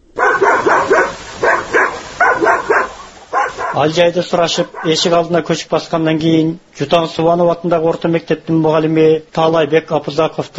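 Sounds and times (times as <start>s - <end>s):
lone village dog barking near a newly closed border outpost: 0.1s - 4.0s, 4.6s - 5.0s
speech: 3.7s - 10.5s.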